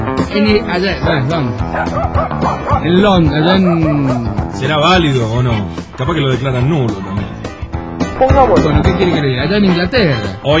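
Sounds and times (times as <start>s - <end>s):
speech: 0.3s - 7.3s, 8.2s - 10.5s
Bichon Frisé and Shih Tzu barking, yipping and whining at a wedding ceremony: 1.6s - 4.6s.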